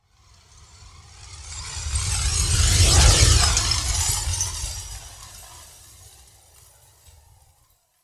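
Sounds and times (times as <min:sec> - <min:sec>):
flyby heard through glass: 0:00.2 - 0:07.5.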